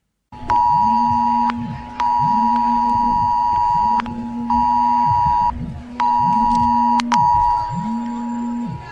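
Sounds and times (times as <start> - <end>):
mobile phone emergency alert tone in Sant Andreu de la Barca during a chemical-risk drill: 0.4 - 8.9.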